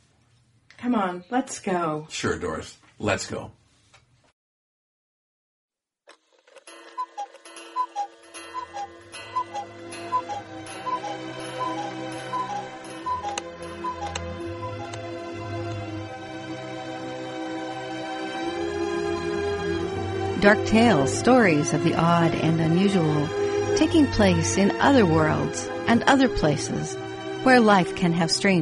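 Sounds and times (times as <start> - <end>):
speech: 0.8 - 3.6, 20.4 - 28.6
clock ticking: 6.7 - 15.1
orchestral music: 6.7 - 27.8.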